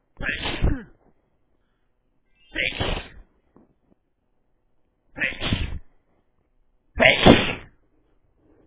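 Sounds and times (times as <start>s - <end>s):
male sneezes: 0.2s - 1.0s, 2.6s - 3.2s, 5.2s - 5.8s, 7.0s - 7.8s.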